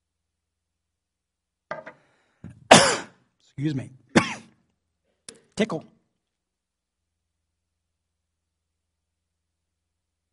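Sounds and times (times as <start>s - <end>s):
person coughing harshly: 2.7s - 3.2s, 4.1s - 4.6s
speech: 3.6s - 4.0s, 5.6s - 6.0s.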